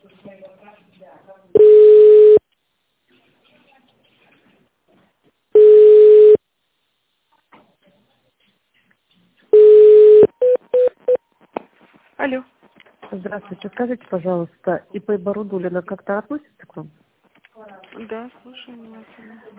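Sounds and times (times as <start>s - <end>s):
telephone ringing tones in a phone menu call: 1.6s - 2.4s, 5.6s - 6.4s, 9.6s - 11.2s
telephone keypad beeps choosing a number in a phone menu: 5.6s - 6.4s, 9.6s - 11.0s
speech: 12.3s - 12.5s, 13.1s - 17.0s, 18.0s - 19.5s.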